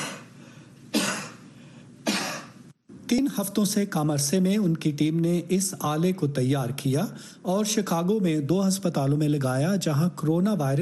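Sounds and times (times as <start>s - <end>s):
sharp coughs: 0.9s - 2.6s
speech: 3.1s - 10.7s.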